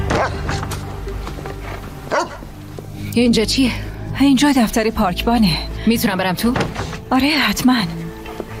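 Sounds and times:
short sharp bark-like bursts of a dog: 0.1 - 0.6, 2.1 - 2.4
speech: 3.2 - 8.0.

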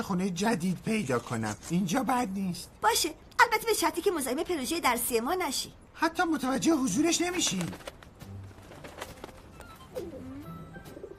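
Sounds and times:
speech: 0.0 - 8.0
pigeon cooing in low throaty warbles: 8.8 - 11.1.

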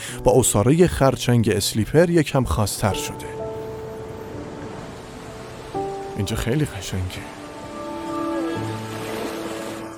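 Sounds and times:
speech: 0.1 - 3.4, 6.2 - 7.4
sea waves breaking and rolling: 3.5 - 9.9.

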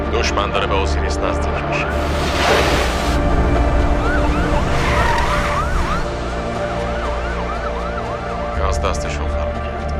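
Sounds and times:
speech: 0.1 - 3.4, 8.8 - 9.4
wailing ambulance siren in a video game: 3.2 - 9.9.

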